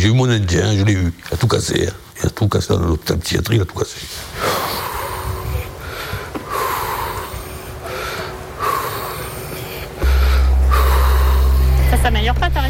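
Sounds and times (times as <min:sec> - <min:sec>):
speech: 0:00.0 - 0:04.8
heavy labored breathing with a raspy wheeze: 0:04.0 - 0:12.0
low engine-like hum: 0:06.5 - 0:12.6.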